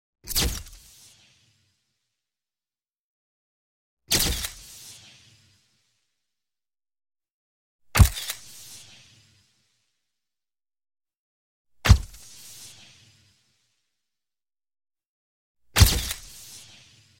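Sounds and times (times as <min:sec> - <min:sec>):
camera shutter taking a picture: 0:00.3 - 0:01.0, 0:04.1 - 0:05.0, 0:08.0 - 0:09.0, 0:15.8 - 0:16.8
electric camera flash tail: 0:00.3 - 0:01.6, 0:04.1 - 0:05.7, 0:08.0 - 0:09.5, 0:12.0 - 0:13.1, 0:15.8 - 0:17.1.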